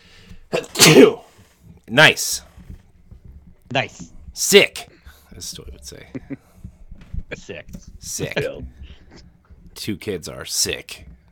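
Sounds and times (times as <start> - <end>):
sneezes: 0.5 - 1.3
speech: 0.8 - 1.2, 1.9 - 2.5, 3.7 - 6.5, 7.3 - 11.1.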